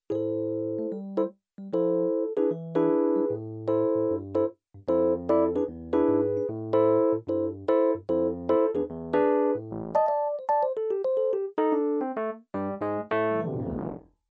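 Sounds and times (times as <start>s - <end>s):
Nord Rhodes electric piano: 0.1s - 14.0s.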